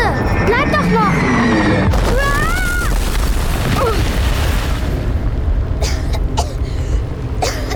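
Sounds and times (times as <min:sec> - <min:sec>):
huge explosion of object falling from sky: 0:00.0 - 0:07.7
crackling over explosion: 0:01.9 - 0:07.7.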